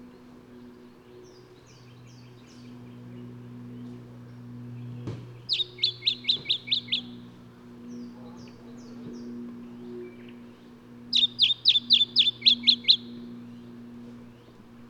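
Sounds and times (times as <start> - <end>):
low hum: 0.0 - 14.8
Lemon-bellied flyrobin Microeca flavigaster calling: 5.3 - 9.3, 11.0 - 13.9.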